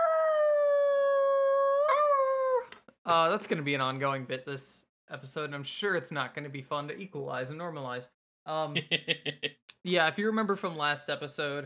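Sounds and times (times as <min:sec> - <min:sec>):
person imitating a wolf howl: 0:00.0 - 0:02.7
speech: 0:03.1 - 0:11.6.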